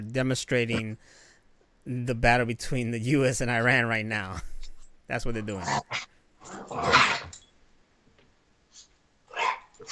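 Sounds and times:
speech: 0.0 - 1.2, 1.8 - 4.5, 5.1 - 7.0
big dog barking: 9.3 - 9.8.

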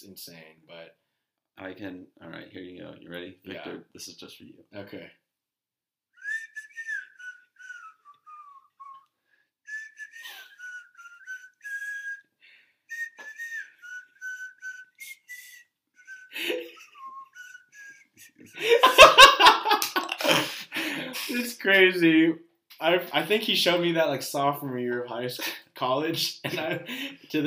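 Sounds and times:
speech: 0.0 - 5.2, 21.3 - 27.4
person whistling softly: 6.2 - 9.1, 9.7 - 12.3, 12.9 - 18.6
loud laughter: 18.5 - 21.3.

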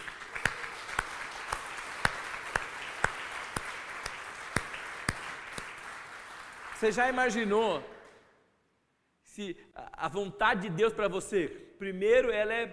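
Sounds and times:
audience applause: 0.0 - 7.4
speech: 6.8 - 7.9, 9.4 - 12.7.

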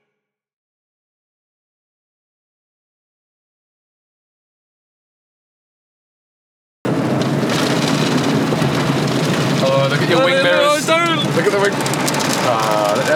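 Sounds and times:
heavy water spray drumming on a car in an automatic car wash: 6.9 - 13.1
faint voices: 9.5 - 13.1.

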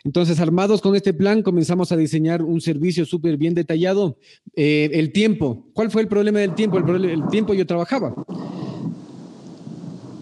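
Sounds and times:
speech: 0.0 - 8.6
thunder rumbling: 6.1 - 10.1.

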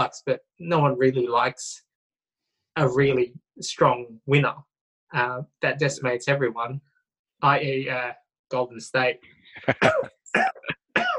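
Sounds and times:
speech: 0.0 - 1.8, 2.8 - 10.8
harsh throat clearing: 9.6 - 11.1
person coughing: 9.6 - 11.1.

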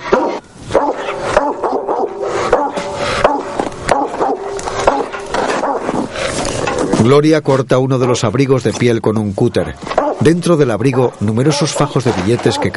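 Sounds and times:
dog barking incessantly with yips: 0.1 - 6.0, 10.0 - 10.2, 10.9 - 12.7
speech: 7.1 - 12.7.

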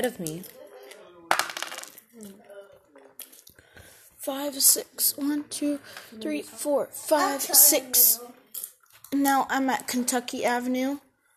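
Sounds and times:
speech: 0.0 - 0.6, 2.2 - 2.5, 4.2 - 11.0
dice rattling and clattering across a game board: 1.3 - 2.0.

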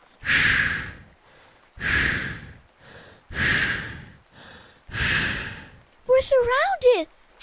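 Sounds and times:
heavy raspy breathing of skeleton creatures: 0.2 - 5.9
speech: 6.4 - 7.2.

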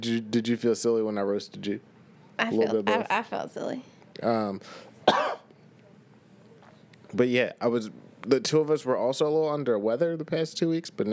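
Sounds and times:
speech: 0.0 - 5.2, 7.1 - 11.1
person coughing: 5.1 - 5.5.

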